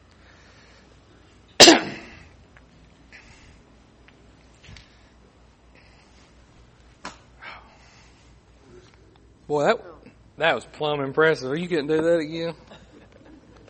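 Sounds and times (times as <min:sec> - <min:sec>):
person clearing throat: 0:01.6 - 0:02.3
person coughing harshly: 0:01.6 - 0:02.3
speech: 0:09.5 - 0:12.7.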